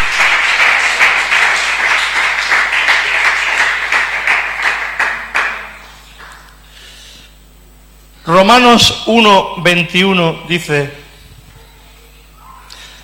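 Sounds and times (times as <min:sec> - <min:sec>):
audience applauding: 0:00.0 - 0:06.6
speech: 0:08.4 - 0:11.0.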